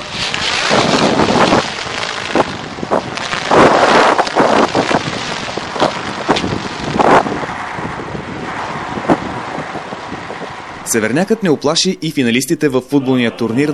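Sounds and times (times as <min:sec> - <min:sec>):
strong wind blowing across an open airfield: 0:00.0 - 0:12.1
speech: 0:10.9 - 0:13.7.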